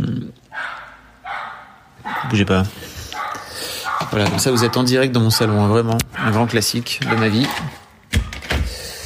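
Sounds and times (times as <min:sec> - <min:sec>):
neighbour's dog barking: 0:00.5 - 0:02.5, 0:03.1 - 0:07.9
speech: 0:02.3 - 0:02.9, 0:04.1 - 0:07.8.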